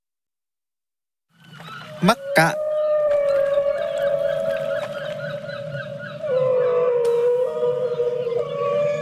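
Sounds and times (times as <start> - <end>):
whale song: 1.4 - 9.0
speech: 2.0 - 2.6.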